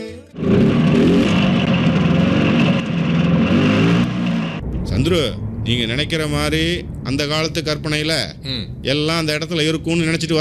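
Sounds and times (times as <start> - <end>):
motorcycle engine starting and revving: 0.3 - 5.4
speech: 5.0 - 10.4.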